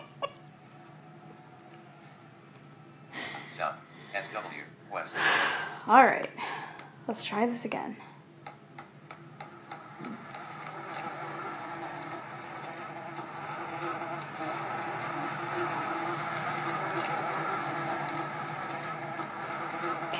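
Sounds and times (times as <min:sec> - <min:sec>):
speech: 0:03.5 - 0:08.1
video game buzzing cue marking ammo: 0:09.6 - 0:20.1.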